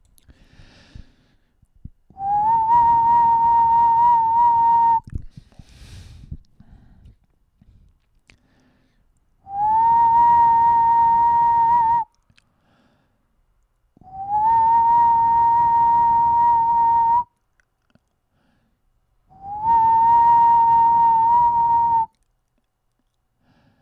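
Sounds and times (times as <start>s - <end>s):
whistling: 2.1s - 5.1s, 9.5s - 12.2s, 14.0s - 17.4s, 19.3s - 22.2s.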